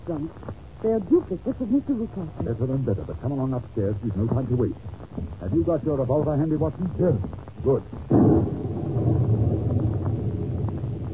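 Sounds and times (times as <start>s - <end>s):
speech: 0.1s - 8.3s
thunder rumbling from a nearby lightning strike: 4.4s - 11.1s.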